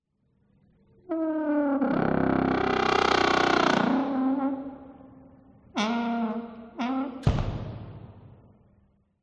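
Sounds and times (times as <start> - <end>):
haunted house door: 1.1 - 5.1, 5.8 - 7.6.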